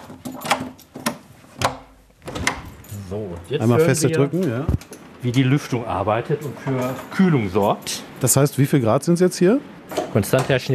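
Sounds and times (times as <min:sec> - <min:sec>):
door to a secured inner room being unlocked: 0:00.0 - 0:02.9
speech: 0:03.1 - 0:10.7.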